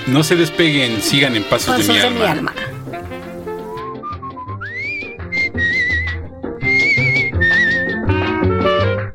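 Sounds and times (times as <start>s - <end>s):
speech: 0.0s - 2.8s
full band accompaniment with steady bass and rhythm: 0.6s - 3.8s
clear loud whistled melody: 2.9s - 9.1s.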